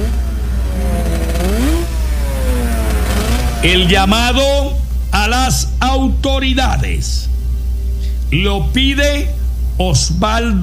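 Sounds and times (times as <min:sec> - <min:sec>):
motorcycle engines revving through loud exhausts: 0:00.0 - 0:05.8
speech: 0:03.6 - 0:07.3, 0:08.3 - 0:10.6.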